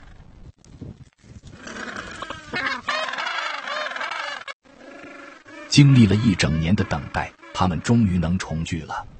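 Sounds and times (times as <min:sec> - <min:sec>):
penguins calling in harsh braying cries: 0:02.0 - 0:08.0
speech: 0:05.8 - 0:09.1.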